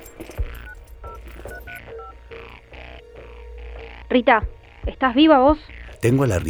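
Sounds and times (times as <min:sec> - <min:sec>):
mobile phone keypad dialing beeps: 0:00.0 - 0:02.4
speech: 0:04.1 - 0:06.4.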